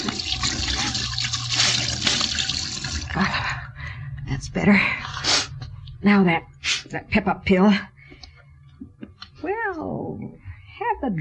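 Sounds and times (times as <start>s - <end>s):
steady rush of running water: 0.0s - 3.2s
speech: 4.5s - 5.0s, 6.0s - 7.9s, 9.4s - 11.1s.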